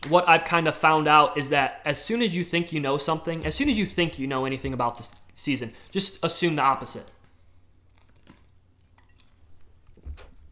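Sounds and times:
speech: 0.1 - 7.2
person sipping a drink: 7.5 - 10.5
soft wet mouth clicks: 7.9 - 9.4.

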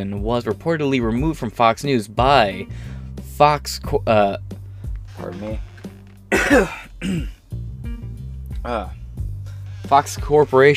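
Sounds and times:
speech: 0.0 - 4.6, 5.2 - 5.7, 6.3 - 7.6, 8.6 - 9.0, 9.8 - 10.7
person clearing throat with a harsh rasping burst: 6.3 - 7.4.

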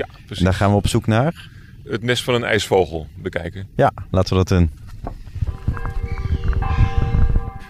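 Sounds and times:
speech: 0.0 - 5.2
crunching footsteps on gravel: 4.8 - 7.5
church bell ringing: 5.4 - 7.6.

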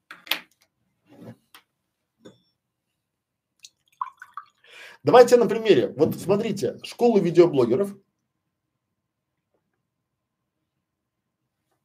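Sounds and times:
person drinking water with wet gulps and swallows: 3.6 - 4.7
speech: 5.0 - 8.0.

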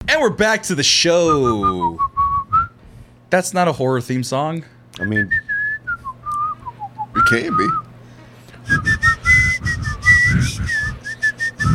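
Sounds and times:
speech: 0.1 - 2.1, 3.3 - 5.5, 7.2 - 7.8, 8.7 - 9.0
person whistling a short tune: 1.4 - 2.8, 5.0 - 7.8, 8.7 - 11.7.

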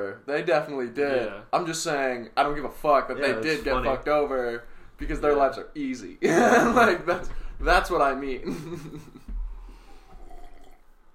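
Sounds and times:
speech: 0.0 - 9.2
laughter: 6.2 - 7.3, 8.4 - 9.3
quiet swallowing: 9.3 - 11.0
person drinking tap water: 9.3 - 11.1.

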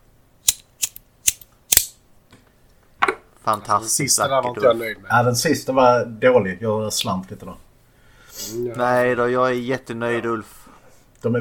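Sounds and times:
rough scraping lighter strike: 0.4 - 2.0
speech: 3.4 - 7.7, 8.5 - 10.6.

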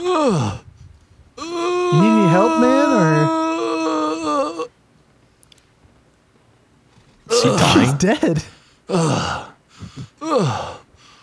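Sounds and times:
speech: 0.1 - 0.6, 1.4 - 3.4, 7.4 - 10.8
ragged gasping breaths: 8.4 - 11.2.

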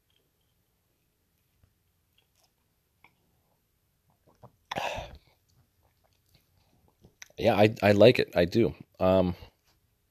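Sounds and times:
person sipping a drink: 4.2 - 7.4
speech: 7.4 - 9.5.

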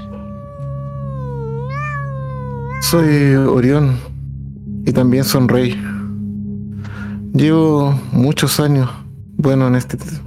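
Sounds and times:
small cat meowing: 0.0 - 3.3
speech: 2.9 - 4.1, 4.9 - 6.0, 7.3 - 10.2.

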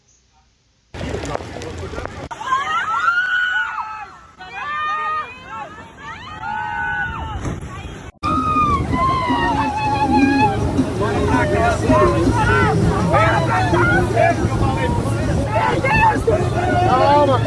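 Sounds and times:
wind outdoors on the water: 0.0 - 17.4
panicked tourists screaming on boats: 2.3 - 7.5, 8.2 - 17.4
loud rumbling of rockfall: 8.2 - 17.4.

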